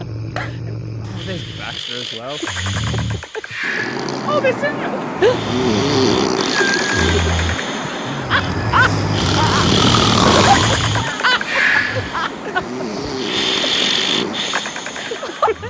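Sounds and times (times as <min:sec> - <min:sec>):
laughter: 0:00.0 - 0:15.6
loud snoring from someone who has just fallen asleep: 0:00.0 - 0:15.6
speech: 0:01.3 - 0:07.6.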